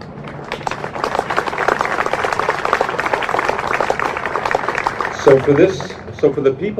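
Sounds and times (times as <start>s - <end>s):
crowd applauding: 0.0s - 6.7s
speech: 5.2s - 6.7s.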